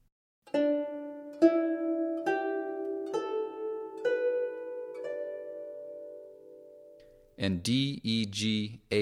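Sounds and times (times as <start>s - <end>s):
jung zither plucked through a pentatonic D E G A B scale: 0.4s - 7.4s
speech: 7.4s - 9.0s.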